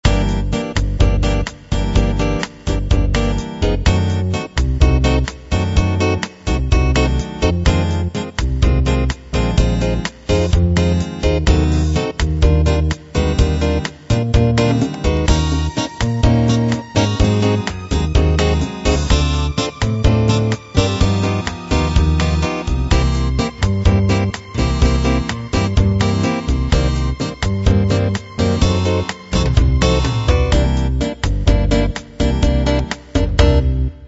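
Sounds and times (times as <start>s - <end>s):
bossa nova music: 0.0s - 34.0s.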